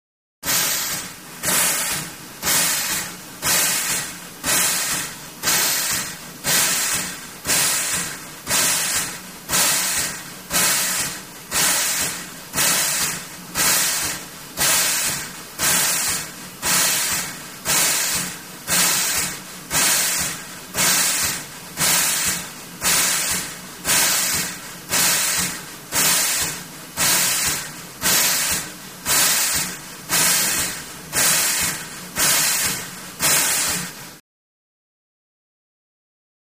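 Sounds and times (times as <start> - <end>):
steam train chuffing: 0.5 - 33.9.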